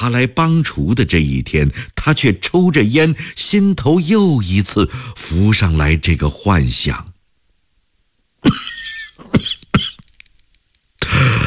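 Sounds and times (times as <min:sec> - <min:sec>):
speech: 0:00.0 - 0:07.1
man coughing after choking on smoke: 0:08.4 - 0:10.1, 0:11.0 - 0:11.4.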